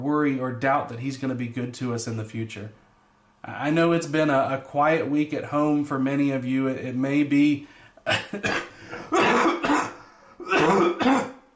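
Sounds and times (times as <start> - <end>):
speech: 0.0 - 2.8, 3.4 - 9.4
harsh throaty coughs: 8.0 - 11.5.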